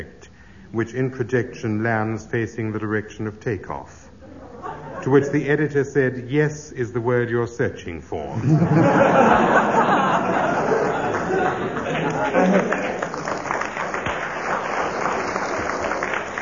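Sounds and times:
speech: 0.0 - 4.1, 5.0 - 10.0
laughter: 4.2 - 5.6, 8.3 - 16.2
audience clapping: 10.4 - 16.4.

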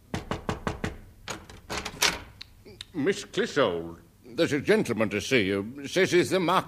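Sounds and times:
knocking on a wooden dressing room door: 0.0 - 1.6
speech: 2.9 - 6.6.

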